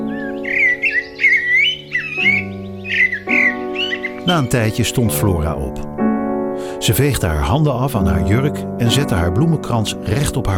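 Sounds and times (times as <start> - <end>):
blackbird singing in a tree: 0.0 - 5.8
speech: 4.2 - 6.0, 6.8 - 10.5.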